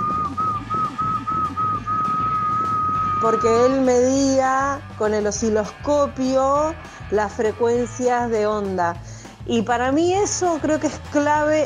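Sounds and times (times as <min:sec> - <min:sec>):
person whistling a steady high tone imitating radio test tones: 0:00.0 - 0:04.0
speech: 0:03.2 - 0:11.6.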